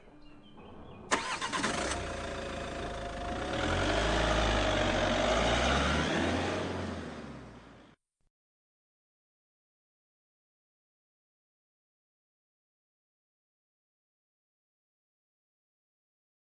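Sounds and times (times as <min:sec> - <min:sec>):
car engine starting, revving and pulling away: 0:01.1 - 0:08.0.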